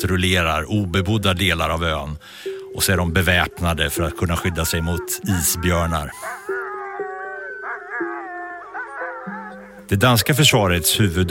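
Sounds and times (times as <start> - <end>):
speech: 0.0 - 6.4, 9.9 - 11.2
pack of military patrol sled dogs howling in Greenland: 3.1 - 10.5.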